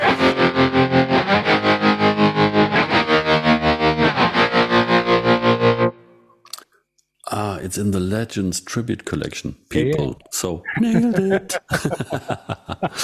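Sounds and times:
distorted electric guitar chord with tremolo effect: 0.0 - 6.2
speech: 7.6 - 13.0
laughter: 10.7 - 13.0.

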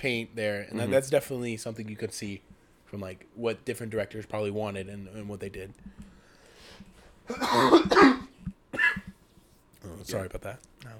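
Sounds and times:
speech: 0.0 - 6.0, 6.8 - 8.2, 9.8 - 10.9
person coughing hard and rasping: 7.3 - 9.2.

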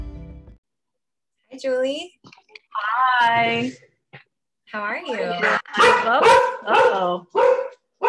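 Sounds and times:
speech: 1.6 - 3.9, 4.7 - 7.6
two pet dogs barking: 5.4 - 8.0.

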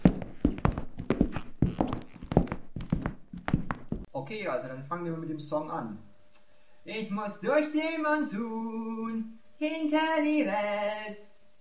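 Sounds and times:
brisk footsteps walking: 0.0 - 4.1
speech: 4.3 - 6.1, 6.9 - 11.2.

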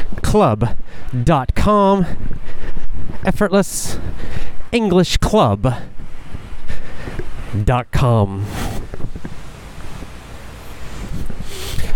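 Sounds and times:
speech: 0.3 - 5.9, 7.5 - 8.6
wind buffeting the microphone beside a canal in south central Osaka: 2.0 - 4.8, 5.8 - 7.5, 8.4 - 11.9
higher hiss: 8.3 - 11.9.

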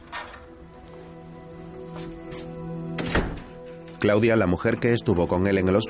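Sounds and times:
house door shutting with a thud: 3.0 - 3.6
speech: 4.0 - 5.8.

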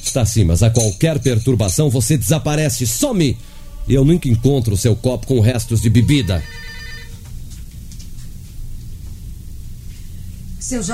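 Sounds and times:
speech: 0.0 - 6.7, 10.7 - 10.9
low rumble and hiss: 0.0 - 10.9
old telephone bell ringing: 6.0 - 7.2.

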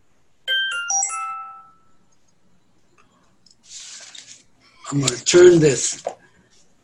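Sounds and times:
mobile phone ringtone for an incoming call from an unknown caller: 0.5 - 2.1
hissing rustle: 3.6 - 4.5
speech: 4.9 - 6.2.

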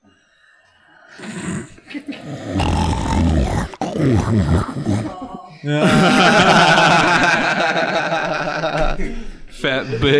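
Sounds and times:
person snoring: 1.0 - 5.6
speech: 4.0 - 10.1
laughter: 4.2 - 10.1.

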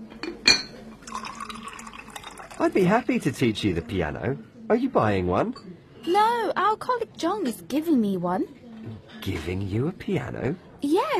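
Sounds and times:
light ceramic clink: 0.1 - 2.7
tea poured into a cup in a cafe: 1.0 - 4.1
speech: 2.6 - 8.6, 9.2 - 11.1.

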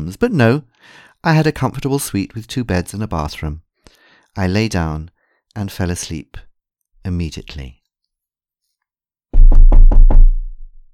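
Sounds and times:
speech: 0.0 - 7.8
heavy knocking on a hotel room door: 9.3 - 10.7.

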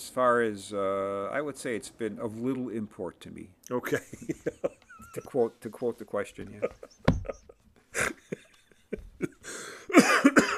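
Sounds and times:
speech: 0.2 - 7.4
breathy laughter: 3.9 - 5.4, 6.5 - 10.5
harsh noisy coughs: 9.9 - 10.5.

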